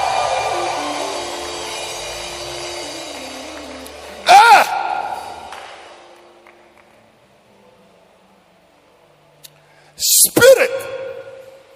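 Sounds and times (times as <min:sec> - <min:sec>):
church audience screaming together: 0:00.0 - 0:05.6
loud rising shriek: 0:00.0 - 0:05.6
speech: 0:10.2 - 0:11.0.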